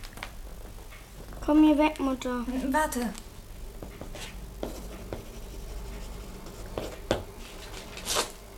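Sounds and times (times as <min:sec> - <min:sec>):
speech: 0:01.5 - 0:03.2
pen writing out a cheque: 0:04.0 - 0:07.0.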